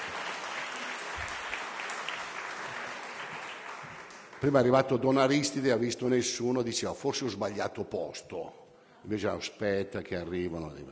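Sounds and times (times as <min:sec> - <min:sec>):
audience applause at an evening gathering: 0:00.0 - 0:04.6
speech: 0:04.4 - 0:10.9.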